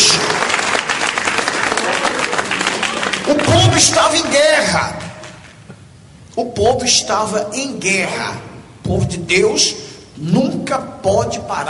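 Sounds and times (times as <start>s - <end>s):
church congregation applauding: 0.0s - 5.6s
speech: 3.3s - 5.0s, 6.4s - 11.6s.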